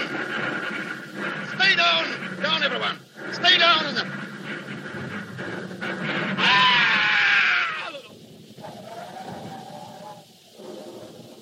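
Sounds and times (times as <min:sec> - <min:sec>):
steady rushing noise: 0:00.0 - 0:11.3
speech: 0:02.6 - 0:04.2
long shrill human scream: 0:06.4 - 0:10.3.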